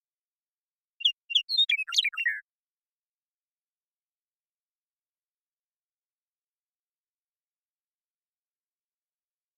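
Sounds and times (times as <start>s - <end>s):
Western meadowlark singing: 1.0s - 2.5s.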